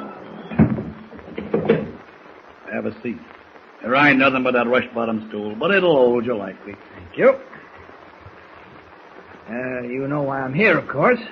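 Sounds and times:
wooden door closing: 0.4 - 2.0
speech: 2.8 - 7.5, 9.5 - 11.3.

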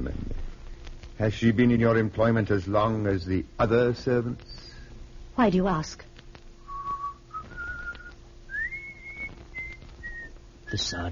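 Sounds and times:
faint low hum: 0.0 - 11.0
speech: 1.2 - 4.6, 5.4 - 6.1, 10.8 - 11.0
man whistling a short tune of long sliding notes: 6.6 - 11.0.

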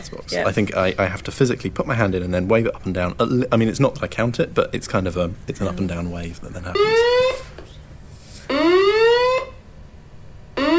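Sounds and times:
speech: 0.0 - 7.5
building fire alarm blaring rising whoop tones: 6.8 - 7.4, 8.5 - 9.6, 10.6 - 10.7.

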